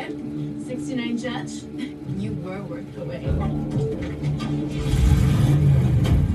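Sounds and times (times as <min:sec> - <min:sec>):
speech: 0:00.1 - 0:05.3
car engine revving: 0:03.5 - 0:06.3.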